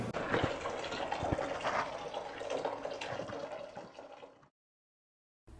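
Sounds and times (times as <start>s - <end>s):
water pouring into a washbasin as vegetables are washed: 0.2s - 4.5s.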